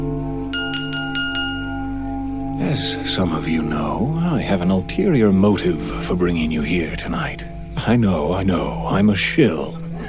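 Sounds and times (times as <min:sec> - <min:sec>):
steady low hum: 0:00.0 - 0:10.0
fork tapping a champagne glass: 0:00.6 - 0:01.8
speech: 0:02.8 - 0:09.8.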